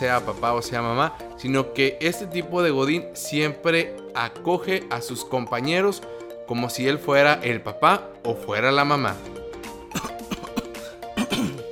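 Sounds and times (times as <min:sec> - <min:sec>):
speech: 0:00.0 - 0:09.4
person coughing harshly: 0:09.9 - 0:11.7.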